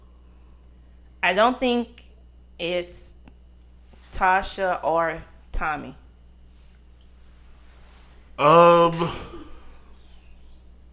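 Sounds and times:
speech: 1.3 - 3.2, 4.1 - 6.0, 8.4 - 9.3
person sneezing: 8.8 - 9.9.

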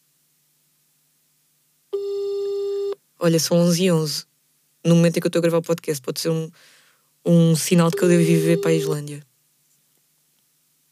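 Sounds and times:
telephone busy signal on a phone call: 2.0 - 3.0, 7.9 - 9.1
speech: 3.2 - 9.3.

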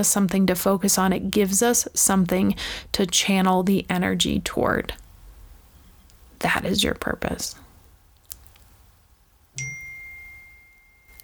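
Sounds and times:
speech: 0.0 - 5.0, 6.4 - 7.6
mobile phone text message notification chime: 9.6 - 11.2.

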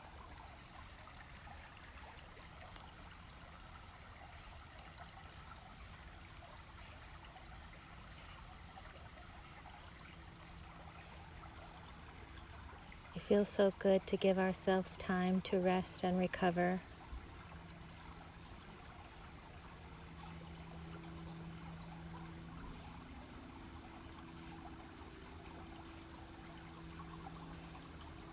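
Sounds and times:
river water flowing: 0.0 - 28.3
speech: 13.2 - 16.9.

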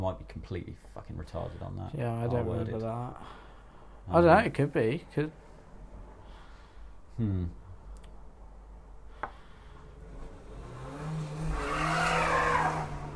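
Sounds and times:
speech: 0.0 - 3.4, 4.0 - 5.5, 7.2 - 7.6
car engine revving during a weak burnout outside: 9.8 - 13.1
car tyres squealing during a weak burnout: 11.4 - 13.1.

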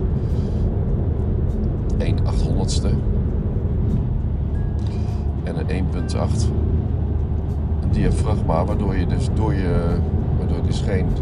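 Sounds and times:
road rumble inside a moving car: 0.0 - 11.2
speech: 2.3 - 3.2, 5.5 - 6.8, 7.9 - 11.2.

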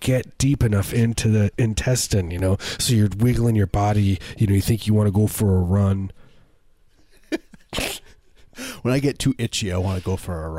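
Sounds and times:
speech: 0.0 - 6.2, 8.8 - 10.5
sneeze: 7.7 - 8.2.

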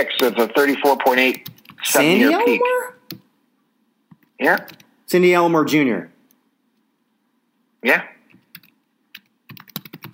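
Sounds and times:
speech: 0.0 - 2.9, 4.4 - 6.1, 7.8 - 8.1
typing on a computer keyboard: 1.2 - 1.8, 4.1 - 4.9, 8.3 - 10.1.

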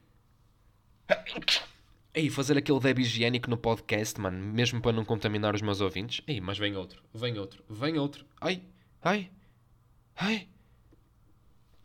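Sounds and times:
forceful sneeze: 1.1 - 1.9
speech: 1.3 - 9.4, 10.2 - 10.5.

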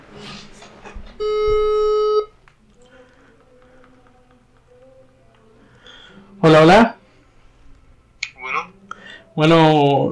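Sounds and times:
telephone ring tone while a call is placed: 1.2 - 2.4
speech: 6.4 - 7.0, 9.4 - 10.1.

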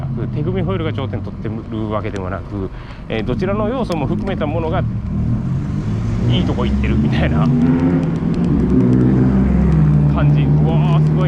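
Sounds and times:
speech: 0.2 - 5.5, 6.3 - 9.0, 10.2 - 11.2
powerful large-engined car rumbling past: 4.3 - 11.2.

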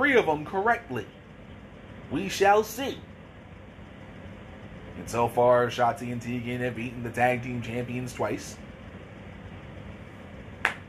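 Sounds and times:
quiet hum: 0.0 - 10.8
speech: 0.1 - 1.2, 2.1 - 3.1, 5.0 - 8.6
hand clap: 10.6 - 10.8.

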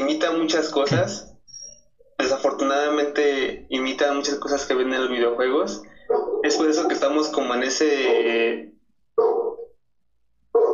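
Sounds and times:
speech: 0.1 - 1.3, 2.6 - 9.3
dog barking: 6.0 - 8.5, 9.2 - 9.8, 10.5 - 10.7.

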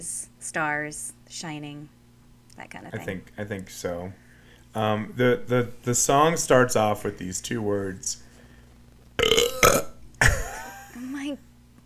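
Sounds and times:
speech: 0.0 - 2.0, 2.6 - 8.2, 9.6 - 9.9, 11.2 - 11.5
loud burp into the microphone: 9.2 - 10.6.

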